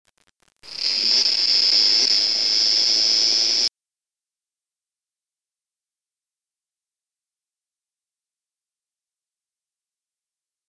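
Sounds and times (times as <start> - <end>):
cicada: 0.7 - 3.7.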